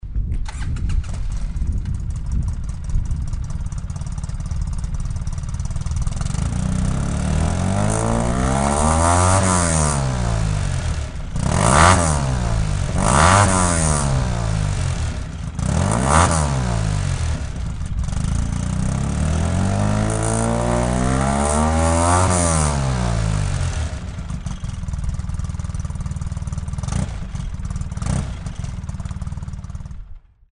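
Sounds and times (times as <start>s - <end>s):
vehicle engine: 0.4s - 30.4s.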